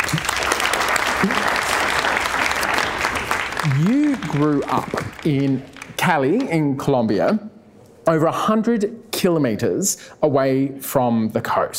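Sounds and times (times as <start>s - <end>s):
sizable audience applause: 0.0s - 6.6s
person whooping: 1.2s - 1.7s
speech: 3.7s - 11.7s.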